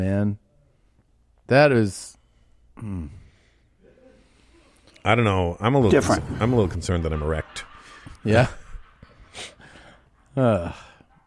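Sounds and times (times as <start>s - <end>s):
speech: 0.0s - 0.4s, 1.5s - 2.2s, 2.8s - 3.2s, 5.0s - 8.6s, 10.4s - 10.9s
heavy breathing: 2.2s - 5.0s, 7.7s - 11.2s
laughter: 5.7s - 11.2s.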